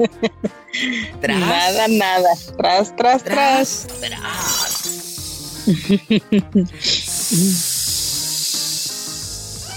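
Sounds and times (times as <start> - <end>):
speech: 0.0 - 4.8, 5.6 - 7.7
voice imitating a hissing deflating sound: 1.2 - 2.6, 3.4 - 6.1, 6.8 - 9.7.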